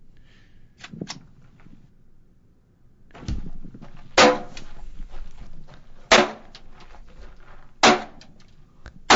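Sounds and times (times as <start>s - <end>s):
gunshots from a home-built short-barrel gun fired for the first time: 4.2s - 4.6s, 6.1s - 6.6s, 7.8s - 8.2s.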